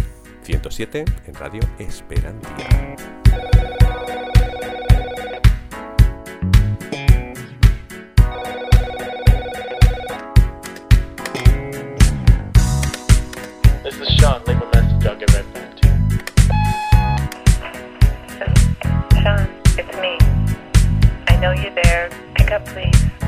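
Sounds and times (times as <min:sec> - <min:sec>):
song with a steady thumping beat: 0:00.0 - 0:23.2
speech: 0:00.5 - 0:03.5
telephone ringing inside a song: 0:03.2 - 0:05.5, 0:08.2 - 0:10.3, 0:16.5 - 0:17.3.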